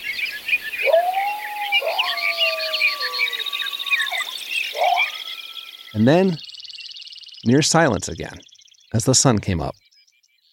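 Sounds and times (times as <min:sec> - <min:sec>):
dawn chorus of chirping twittering birds: 0:00.0 - 0:10.5
coyotes howling at dawn: 0:00.7 - 0:06.4
speech: 0:06.0 - 0:06.5, 0:07.4 - 0:09.8.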